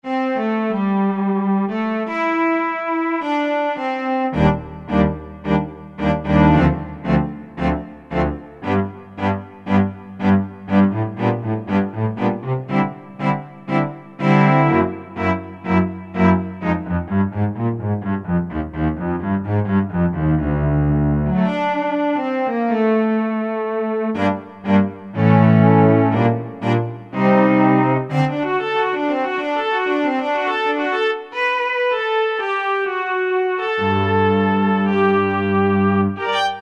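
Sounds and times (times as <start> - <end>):
chamber ensemble music on Korg N364 synthesizer: 0.0 - 36.6.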